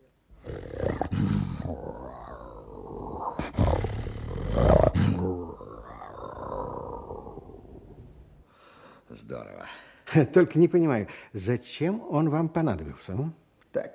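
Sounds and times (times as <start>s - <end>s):
lion roaring: 0.4s - 8.0s
speech: 9.3s - 13.9s.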